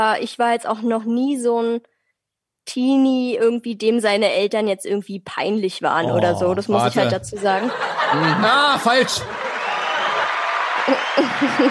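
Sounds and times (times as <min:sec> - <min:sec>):
speech: 0:00.0 - 0:01.9, 0:02.6 - 0:09.5, 0:10.9 - 0:11.6
laughter: 0:06.0 - 0:11.6
recorded crowd applause played from a soundboard: 0:07.9 - 0:11.6
whoops and cheers: 0:09.3 - 0:11.6.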